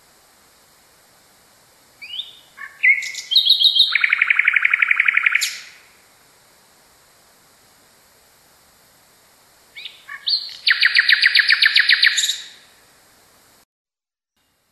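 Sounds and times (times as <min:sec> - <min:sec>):
common nightingale song: 0:01.9 - 0:06.2, 0:09.7 - 0:12.9.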